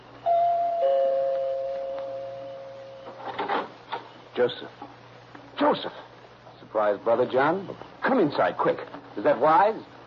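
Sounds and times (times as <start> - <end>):
doorbell chiming a two-note ding-dong: 0.2 - 3.2
speech: 4.4 - 5.0, 5.6 - 6.1, 6.7 - 9.9.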